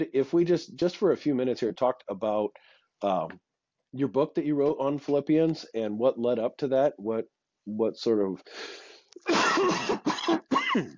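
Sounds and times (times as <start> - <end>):
speech: 0.0 - 10.9
harsh coughing: 9.2 - 10.9.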